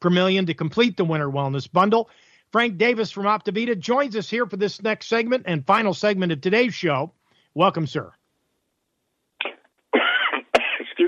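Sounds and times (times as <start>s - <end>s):
speech: 0.0s - 8.2s
harsh coughs from a nearby person: 9.4s - 11.0s.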